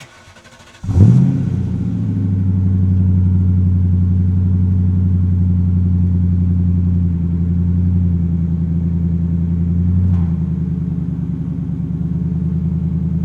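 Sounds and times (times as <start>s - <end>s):
1999 Mustang engine starting and idling: 0.0s - 13.2s.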